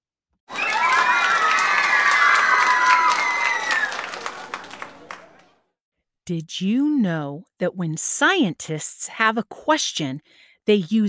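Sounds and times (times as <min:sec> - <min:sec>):
crowd of children applauding: 0:00.5 - 0:05.6
speech: 0:06.3 - 0:11.0.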